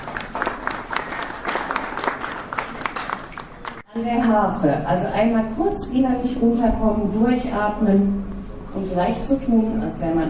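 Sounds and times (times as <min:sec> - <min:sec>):
audience at an exhibition event applauding: 0:00.0 - 0:03.9
speech: 0:04.0 - 0:10.2.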